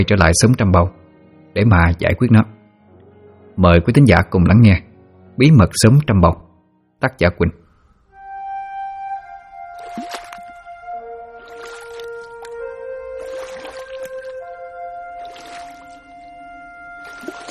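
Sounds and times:
speech: 0.0s - 2.6s, 3.6s - 6.4s, 7.0s - 7.6s
sustained tonal music bed: 0.0s - 17.4s
water swishing from a sampan boat drifting slowly on a river at night: 9.7s - 10.6s, 11.4s - 17.4s.

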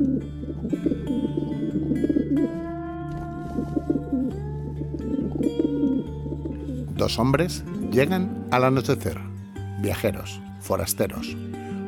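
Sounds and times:
pigeons cooing at dusk near an old house among dense pines: 0.0s - 6.9s
sustained droning background: 0.0s - 11.8s
speech: 7.0s - 11.5s.

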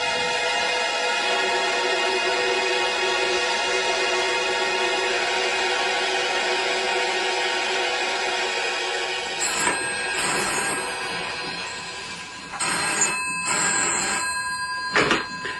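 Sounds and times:
faint continuous high whine: 0.0s - 15.5s
telephone ringing with bell-like tones: 9.4s - 15.5s.

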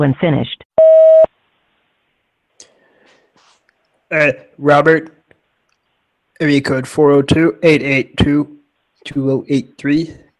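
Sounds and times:
speech: 0.0s - 0.6s, 4.1s - 5.2s, 6.4s - 10.2s
answering machine message tone beep: 0.8s - 1.3s.

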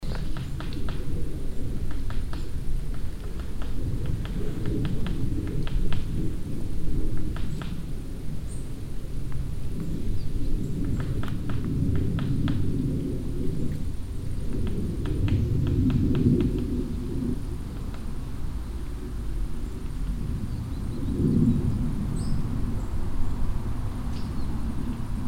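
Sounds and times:
woodpecker pecking on an old trunk in a forest: 0.0s - 6.1s, 7.2s - 7.9s, 14.5s - 20.0s
passing aircraft rumbling in the sky: 0.0s - 25.2s.

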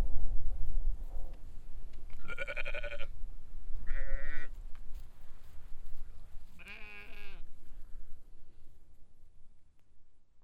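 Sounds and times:
gusty wind on a hill pasture: 0.0s - 9.5s
sheep bleating on a windy hill pasture at Hupperdange: 2.2s - 3.1s, 3.8s - 4.6s, 6.6s - 7.5s.

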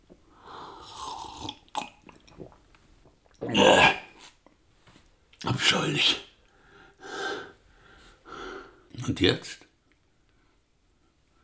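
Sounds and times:
person gulping a potion of water mixed with henbane: 0.8s - 4.4s
wet breathy swallowing and mouth sounds: 0.8s - 4.4s
speech: 5.5s - 6.3s, 9.1s - 9.6s.

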